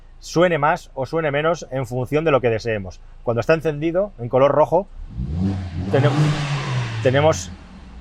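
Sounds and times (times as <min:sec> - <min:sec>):
speech: 0:00.2 - 0:07.6
sports car engine revving with loud exhaust: 0:05.0 - 0:07.9.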